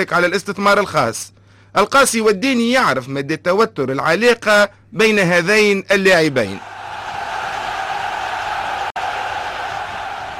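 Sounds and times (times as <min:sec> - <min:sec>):
speech: 0:00.0 - 0:06.7
large stadium crowd roaring and cheering: 0:06.6 - 0:10.3.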